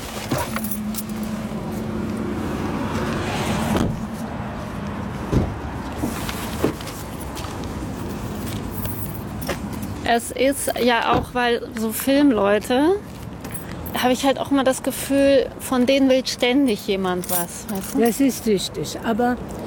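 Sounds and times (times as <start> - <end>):
rustling movement of people climbing out of a car: 0.0 - 1.9, 4.0 - 11.0
car engine hum: 0.0 - 11.6
keys jingling: 0.2 - 1.4, 7.9 - 11.0, 16.7 - 18.3
car doors closing: 3.7 - 4.1, 5.3 - 6.9, 10.8 - 11.5
speech: 10.1 - 13.1, 14.0 - 19.6.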